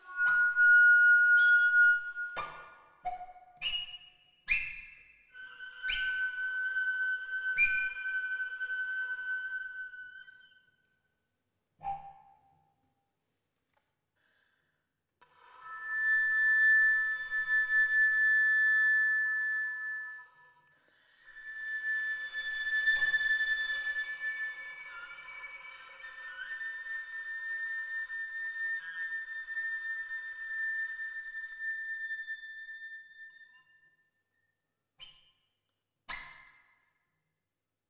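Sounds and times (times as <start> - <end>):
high whistling flute harmonics in highest register: 0.0 - 10.8, 15.4 - 33.8.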